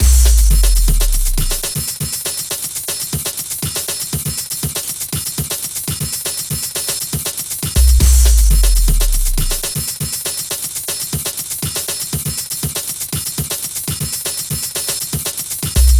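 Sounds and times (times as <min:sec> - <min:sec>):
drums: 0:00.0 - 0:15.9.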